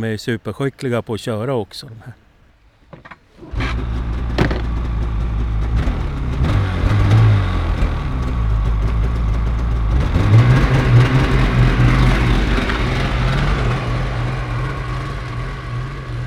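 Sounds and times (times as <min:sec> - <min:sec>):
speech: 0:00.0 - 0:02.2
snowmobile engine revving and driving away: 0:03.3 - 0:16.2
sharp knock: 0:04.4 - 0:04.8.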